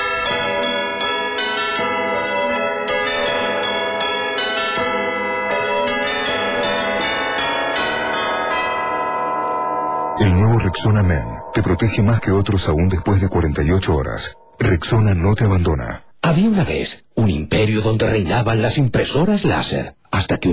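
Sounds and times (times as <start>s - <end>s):
village church bell rung very rapidly: 0.0s - 15.3s
speech: 10.2s - 20.5s.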